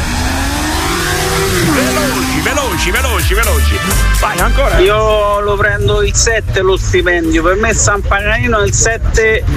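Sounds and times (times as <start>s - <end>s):
MotoGP racing motorcycles speeding past: 0.0s - 3.8s
speech: 2.8s - 9.5s.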